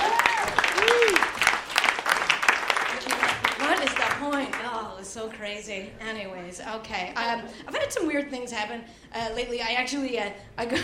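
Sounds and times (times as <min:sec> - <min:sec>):
vocal whoops: 0:00.0 - 0:01.4
live audience applause: 0:00.0 - 0:04.7
speech: 0:05.4 - 0:10.8.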